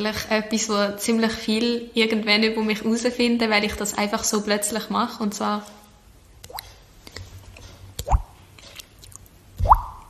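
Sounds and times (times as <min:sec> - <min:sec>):
speech: 0:00.0 - 0:05.8
person imitating water drips with mouth: 0:08.0 - 0:10.0.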